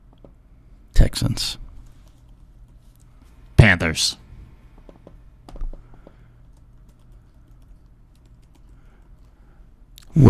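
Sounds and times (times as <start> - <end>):
low steady hum: 0.0 - 10.2
speech: 1.1 - 1.6, 3.8 - 4.2
typing on a computer keyboard: 4.9 - 9.4.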